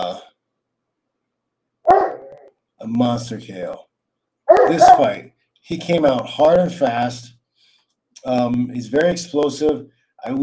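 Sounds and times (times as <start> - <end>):
dog barking outside: 1.9 - 2.5, 4.5 - 5.2
speech: 2.8 - 3.9, 4.7 - 7.4, 8.2 - 10.4.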